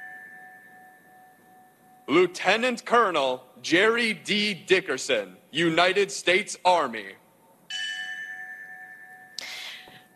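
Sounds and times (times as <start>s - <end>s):
memorial bell strike: 0.0s - 2.0s, 7.7s - 10.1s
speech: 2.1s - 7.2s.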